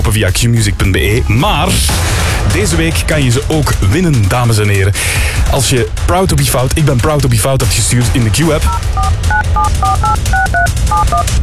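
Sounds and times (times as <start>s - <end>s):
speech: 0.1s - 11.4s
telephone keypad tones as a number is dialed: 8.7s - 11.2s.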